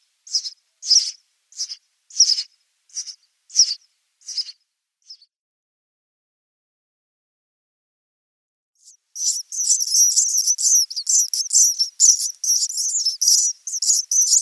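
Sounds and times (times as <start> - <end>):
house sparrow nestlings begging with high buzzy chirps: 0.2 - 5.3, 8.8 - 14.4.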